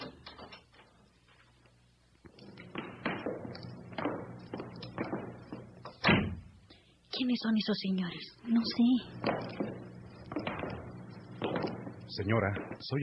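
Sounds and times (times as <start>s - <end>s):
footsteps on a hard floor stopping at a door: 2.3s - 6.0s, 8.6s - 12.8s
loud thump: 6.0s - 6.5s
speech: 7.2s - 9.6s, 12.2s - 13.0s.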